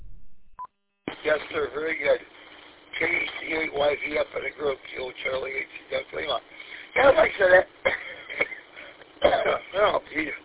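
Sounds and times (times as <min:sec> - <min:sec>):
speech: 0:01.2 - 0:02.4, 0:03.0 - 0:08.2, 0:09.2 - 0:10.4
man coughing over band-limited amateur radio audio: 0:07.0 - 0:10.0
man clearing his throat over amateur radio: 0:07.8 - 0:09.9.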